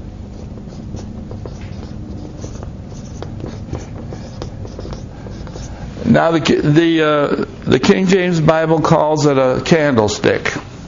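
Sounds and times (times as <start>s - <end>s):
handwriting of a single word: 0.0s - 6.8s
speech: 6.1s - 10.6s.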